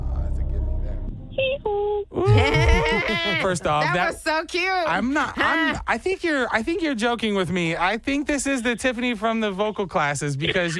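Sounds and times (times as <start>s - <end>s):
low mumbling rumble: 0.0s - 2.7s
person imitating a donkey's hee-haw bray: 1.7s - 3.4s
laughter: 2.2s - 3.9s, 10.4s - 10.7s
speech: 3.3s - 10.7s.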